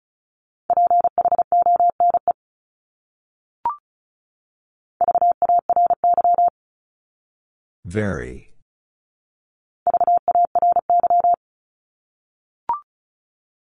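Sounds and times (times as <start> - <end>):
rapid mid-pitched Morse code beeps: 0.7 - 2.3, 5.0 - 6.5, 9.9 - 11.4
speech: 7.9 - 8.5.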